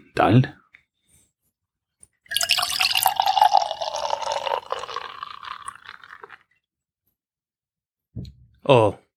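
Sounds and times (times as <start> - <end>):
speech: 0.2 - 0.6, 8.7 - 9.0
beer pouring from a bottle into a glass: 2.3 - 6.5.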